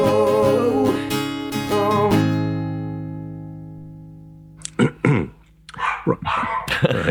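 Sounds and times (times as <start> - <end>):
sustained ringing musical tones: 0.0 - 5.5
dog barking: 5.8 - 7.0.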